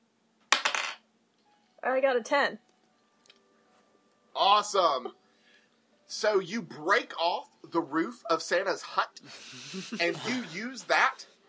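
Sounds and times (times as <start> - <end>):
dice clattering across a hard table: 0.5 - 1.0
speech: 1.8 - 2.7, 4.4 - 5.2, 6.1 - 11.3
laughter: 9.3 - 11.2.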